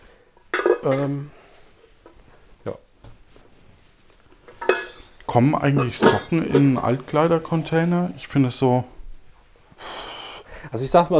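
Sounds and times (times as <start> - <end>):
pots and a deep plate being unloaded from a dishwasher: 0.4 - 1.3, 4.5 - 7.1
speech: 0.8 - 1.4, 2.6 - 2.8, 5.3 - 9.0, 10.7 - 11.1.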